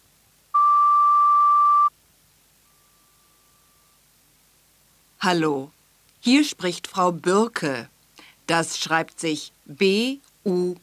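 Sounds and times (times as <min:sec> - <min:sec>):
school answering machine electronic beep tone: 0:00.6 - 0:01.9
speech: 0:05.2 - 0:07.9, 0:08.5 - 0:10.8.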